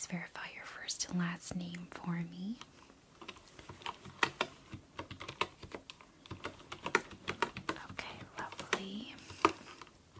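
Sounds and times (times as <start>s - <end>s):
speech: 0.0s - 2.8s
typing on a wooden keyboard: 2.6s - 10.1s.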